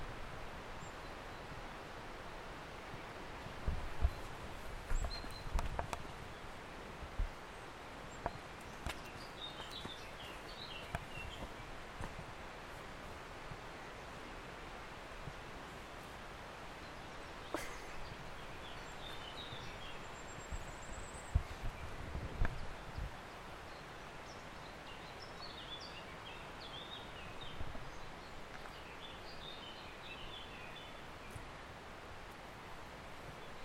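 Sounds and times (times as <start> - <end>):
birds: 0.2 - 33.6.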